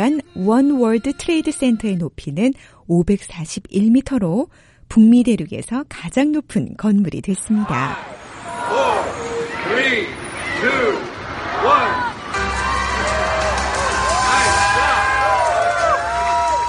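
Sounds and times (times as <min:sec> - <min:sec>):
speech: 0:00.0 - 0:08.9, 0:09.6 - 0:12.0
large crowd cheering at a ribbon-cutting ceremony: 0:07.6 - 0:16.6.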